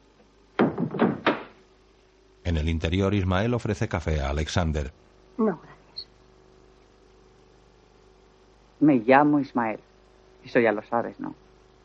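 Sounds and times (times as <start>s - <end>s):
wooden thuds and knocks of a gate and door being shut: 0.6s - 1.6s
speech: 2.5s - 5.8s, 8.8s - 11.4s.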